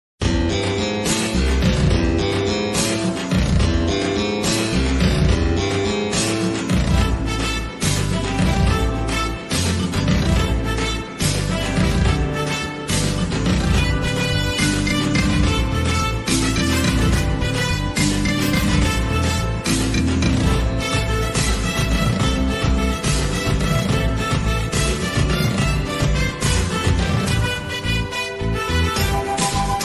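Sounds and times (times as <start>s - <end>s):
Tamil mass background music ringtone: 0.2s - 29.8s.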